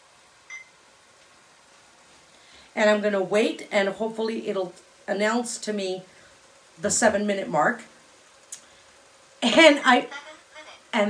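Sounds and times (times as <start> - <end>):
faint steady hiss: 0.0 - 11.0
kitchen appliance beeping as its start button is pressed: 0.5 - 0.8
speech: 2.8 - 6.1, 6.8 - 7.9, 9.4 - 10.2.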